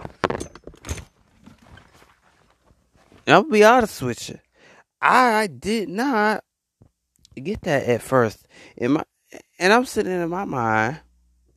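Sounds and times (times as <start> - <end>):
chair being pulled up: 0.0 - 3.3
faint shuffling: 1.3 - 4.3
speech: 3.3 - 4.4, 5.0 - 6.5, 7.4 - 11.0.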